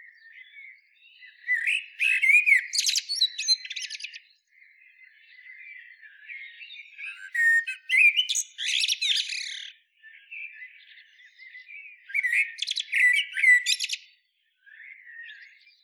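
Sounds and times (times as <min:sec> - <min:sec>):
common blackbird Turdus merula song: 0:00.0 - 0:15.8.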